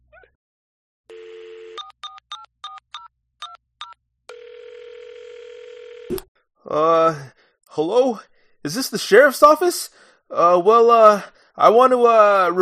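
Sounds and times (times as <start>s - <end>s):
telephone dial tone: 1.1s - 6.1s
speech: 6.7s - 12.6s.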